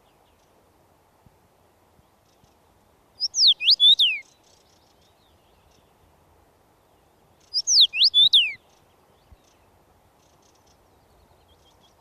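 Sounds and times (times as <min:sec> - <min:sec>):
male Common Rosefinch singing: 0:03.2 - 0:06.0, 0:07.3 - 0:11.9.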